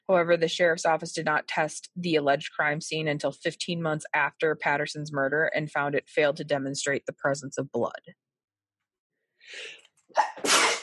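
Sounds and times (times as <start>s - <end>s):
speech: 0.1s - 8.2s
person sneezing: 10.2s - 10.8s.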